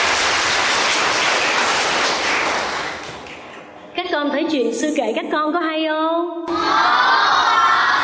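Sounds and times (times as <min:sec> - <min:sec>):
crowd applauding: 0:00.0 - 0:03.5
speech: 0:04.4 - 0:07.2.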